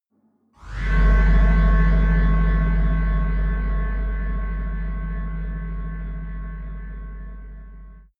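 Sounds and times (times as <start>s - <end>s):
tunnel horror drone: 0.6s - 8.1s.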